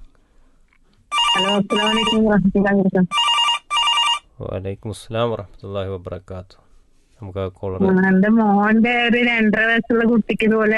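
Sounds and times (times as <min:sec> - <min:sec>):
telephone ringtone of an incoming call: 0:01.1 - 0:02.3, 0:03.1 - 0:04.3
speech: 0:01.4 - 0:03.3, 0:04.4 - 0:06.6, 0:07.2 - 0:10.7.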